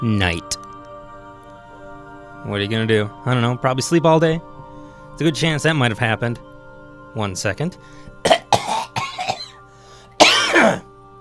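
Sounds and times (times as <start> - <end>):
speech: 0.0 - 0.6, 2.4 - 4.5, 5.2 - 6.5, 7.1 - 8.4
person coughing: 8.2 - 9.6, 10.2 - 10.9.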